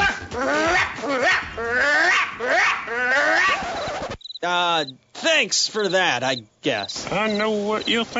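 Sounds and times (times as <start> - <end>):
person imitating an aggressive dog growling and barking: 0.0 - 3.6
speech: 4.8 - 8.1.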